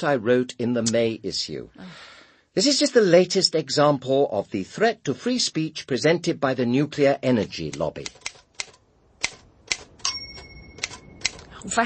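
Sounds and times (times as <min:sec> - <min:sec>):
speech: 0:00.0 - 0:08.3, 0:11.6 - 0:11.8
old balky typewriter key strikes: 0:08.1 - 0:11.5
thin metallic ring of a typewriter: 0:10.0 - 0:11.3.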